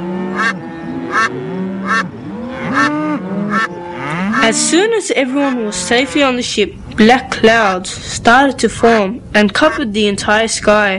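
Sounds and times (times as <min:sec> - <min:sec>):
layered chorus of overlapping bird calls: 0:00.0 - 0:04.3
ducks honking quacks: 0:00.3 - 0:04.6
speech: 0:04.5 - 0:10.9.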